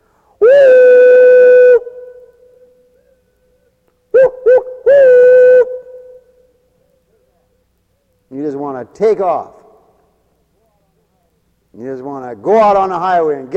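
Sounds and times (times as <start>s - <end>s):
old train whistle blowing: 0.4s - 2.3s, 4.2s - 6.5s
speech: 8.8s - 9.6s, 11.8s - 13.5s.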